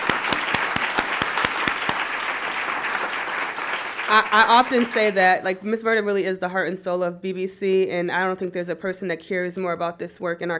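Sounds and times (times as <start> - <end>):
audience applause: 0.0 - 5.2
speech: 4.1 - 10.5.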